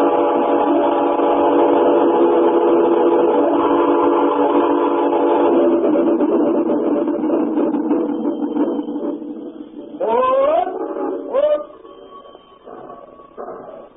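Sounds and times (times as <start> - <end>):
long sustained train whistle: 0.0 - 5.9, 9.8 - 13.9
train rolling along the rails: 0.0 - 13.9.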